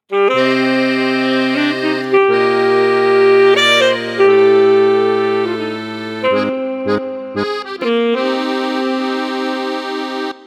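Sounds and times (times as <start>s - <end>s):
accordion in a duo with saxophone: 0.0s - 10.4s
saxophone in a duo with accordion: 0.1s - 10.4s.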